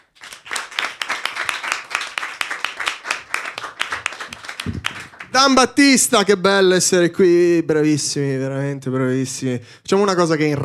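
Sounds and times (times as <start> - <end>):
audience applause for a comedian: 0.0 - 5.6
speech: 4.6 - 10.6.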